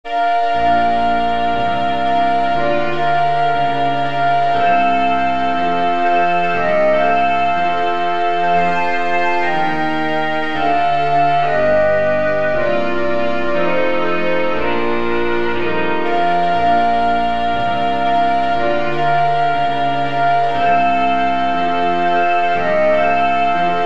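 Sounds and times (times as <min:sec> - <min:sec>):
Christmas song without trumpet: 0:00.0 - 0:23.8.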